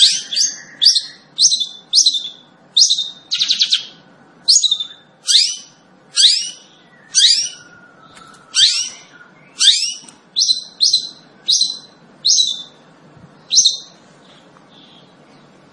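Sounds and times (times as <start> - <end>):
long-tailed shrike singing lively with shrill downslurred notes: 0.0 - 12.8, 13.4 - 14.0.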